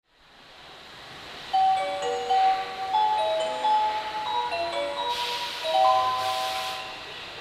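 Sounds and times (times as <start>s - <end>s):
train departure melody at a station: 1.5s - 7.2s.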